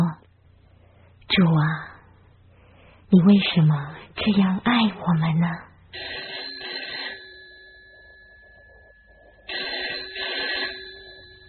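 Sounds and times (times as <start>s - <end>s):
faint hum: 0.0s - 11.4s
speech: 1.3s - 1.9s, 3.1s - 6.4s
telephone ringing with buzzy trilling bursts: 5.9s - 11.4s.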